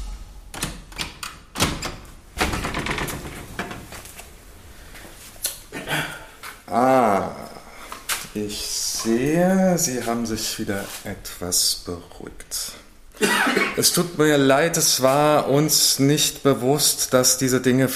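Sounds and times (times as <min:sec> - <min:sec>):
heavy door thudding shut: 0:00.5 - 0:03.7
speech: 0:08.5 - 0:17.9.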